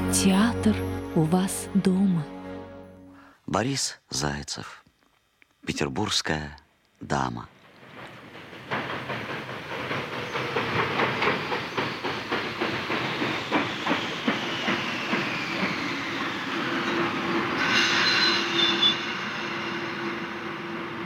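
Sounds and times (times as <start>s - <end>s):
speech: 0.1s - 2.4s, 3.5s - 4.8s, 5.7s - 7.5s
train wheels clickety-clack as train arrives: 7.7s - 21.0s
railroad car wheels squealing: 13.4s - 21.0s.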